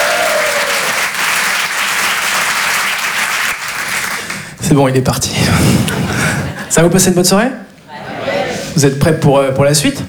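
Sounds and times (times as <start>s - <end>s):
live-event audience applauding and cheering for the host: 0.0s - 4.5s
speech: 4.7s - 6.1s, 6.7s - 7.7s, 8.8s - 10.0s
laughter: 5.5s - 7.0s.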